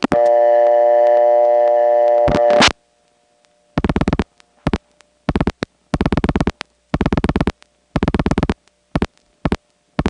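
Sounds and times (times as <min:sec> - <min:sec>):
faint telephone line hum: 0:00.0 - 0:10.0
steady harmonic-rich telephone tone: 0:00.1 - 0:02.7.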